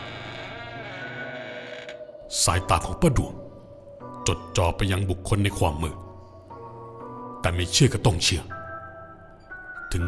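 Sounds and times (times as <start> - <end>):
door hinges creaking as the door swings open: 0.0 - 2.2
speech: 2.3 - 3.4, 4.2 - 6.0, 7.4 - 8.6.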